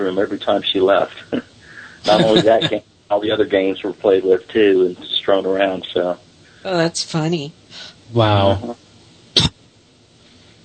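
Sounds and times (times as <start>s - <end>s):
speech: 0.0s - 1.4s, 2.0s - 8.8s
laughter: 0.6s - 4.6s
single short sharp cough: 1.8s - 2.7s.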